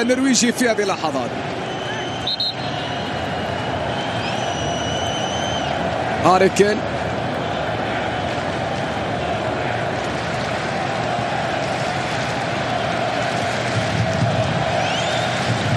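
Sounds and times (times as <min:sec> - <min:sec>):
speech: 0:00.0 - 0:01.8, 0:06.2 - 0:07.0
large stadium crowd roaring at a football match: 0:00.0 - 0:15.7.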